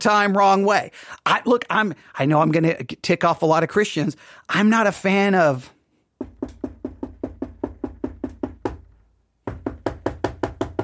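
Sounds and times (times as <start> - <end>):
speech: 0.0 - 5.8
rapid firm knocking on a door: 6.2 - 10.8.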